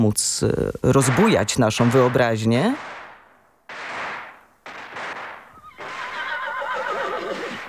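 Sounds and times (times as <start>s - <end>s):
speech: 0.0s - 3.0s
horse neighing: 5.6s - 7.6s.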